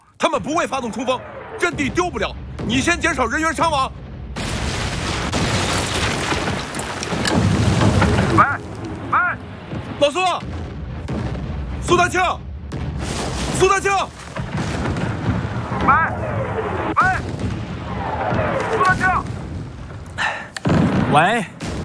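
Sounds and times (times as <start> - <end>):
enemy artillery shelling a defended battlefield position: 0.3 - 21.8
voices shouting: 15.6 - 17.3, 17.9 - 19.3.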